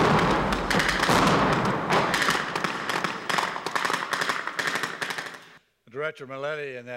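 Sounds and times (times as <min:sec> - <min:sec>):
explosions during a training exercise: 0:00.0 - 0:05.3
speech: 0:06.1 - 0:06.9.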